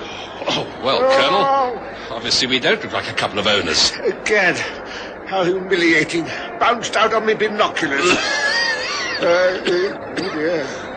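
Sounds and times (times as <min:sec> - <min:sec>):
speech: 0:00.6 - 0:08.5, 0:09.2 - 0:10.9
laughter: 0:07.8 - 0:10.9
man coughing: 0:09.2 - 0:10.6.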